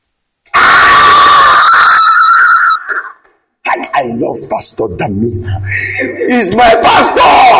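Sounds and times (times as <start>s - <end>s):
crowd shouting and screaming: 0.5s - 3.3s, 6.5s - 7.5s
speech: 4.2s - 7.5s.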